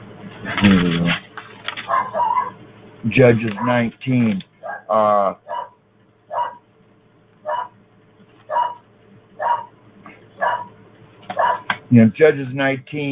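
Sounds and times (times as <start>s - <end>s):
low hum: 0.0s - 13.0s
speech: 0.4s - 1.2s, 3.0s - 5.4s, 11.9s - 13.0s
dog barking: 1.8s - 2.6s, 4.6s - 6.6s, 7.4s - 7.8s, 8.5s - 8.8s, 9.4s - 9.8s, 10.4s - 11.7s.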